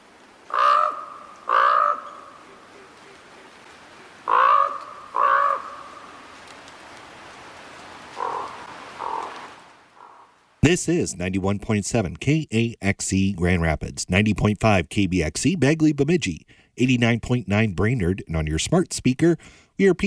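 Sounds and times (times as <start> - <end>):
common raven croaking: 0.5 - 6.4, 8.1 - 10.4
speech: 10.6 - 20.0.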